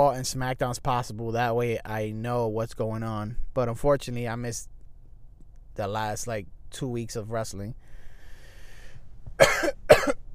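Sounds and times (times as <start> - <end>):
speech: 0.0 - 4.7, 5.8 - 7.9, 9.4 - 10.2
person coughing: 9.4 - 10.3.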